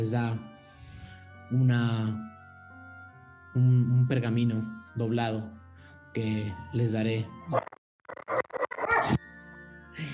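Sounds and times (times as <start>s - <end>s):
speech: 0.0s - 0.5s, 1.5s - 2.3s, 3.6s - 7.7s
dog barking in sharp rough yelps: 8.3s - 9.2s.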